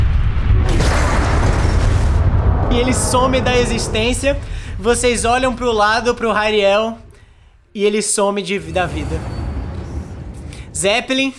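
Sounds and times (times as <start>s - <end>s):
voice imitating an explosion: 0.7s - 7.2s
speech: 2.8s - 7.0s, 7.7s - 9.4s, 10.8s - 11.3s.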